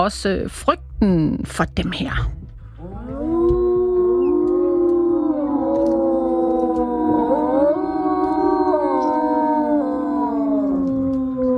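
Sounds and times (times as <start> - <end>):
speech: 0.0 - 2.4
wolves howling together in Denmark: 2.8 - 11.5.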